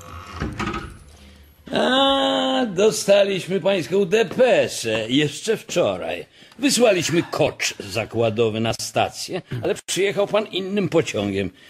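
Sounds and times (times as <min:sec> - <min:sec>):
door creaking open at a doctor's office: 0:00.0 - 0:01.1
speech: 0:01.7 - 0:02.0, 0:02.6 - 0:11.6.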